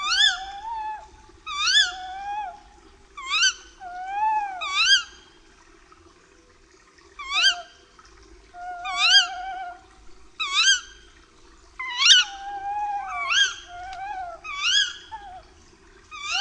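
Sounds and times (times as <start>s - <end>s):
tawny owl calling: 0.0s - 2.6s, 3.2s - 5.2s, 7.2s - 7.7s, 8.6s - 11.0s, 11.8s - 15.5s, 16.1s - 16.3s
faint hum: 0.0s - 16.3s.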